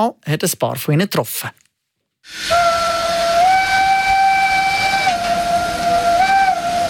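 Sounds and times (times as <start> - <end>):
speech: 0.0 - 1.6, 2.2 - 2.8
steam locomotive whistle on a mountain railway: 2.3 - 6.8.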